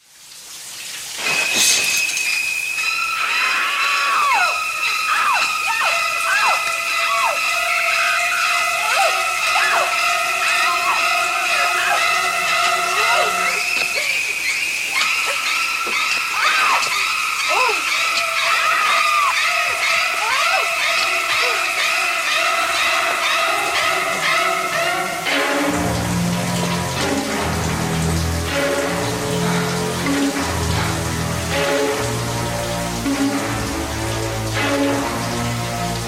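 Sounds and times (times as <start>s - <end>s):
shrieking stabbing high strings from a horror film: 1.2s - 36.0s
people screaming: 1.7s - 26.9s.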